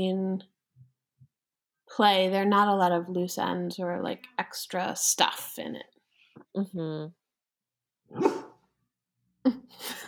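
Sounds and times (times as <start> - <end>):
speech: 0.0 - 0.6, 1.9 - 5.9, 6.6 - 7.2, 8.1 - 8.5
dog barking: 8.1 - 8.6.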